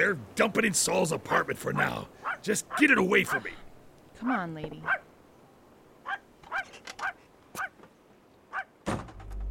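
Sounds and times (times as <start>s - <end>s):
speech: 0.0s - 3.6s, 4.2s - 5.1s
dog barking sharply: 1.8s - 3.5s, 4.8s - 5.0s, 6.0s - 7.8s, 8.5s - 8.7s
heavy thunk: 8.8s - 9.4s.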